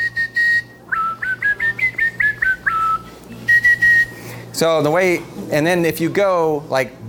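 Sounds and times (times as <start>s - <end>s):
person tongue whistling without using lips: 0.0s - 4.4s
speech: 4.6s - 7.0s.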